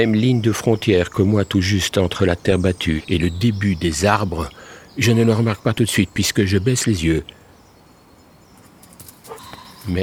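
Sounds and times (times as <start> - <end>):
speech: 0.0 - 7.4, 9.8 - 10.0
dog whimpering: 8.6 - 10.0.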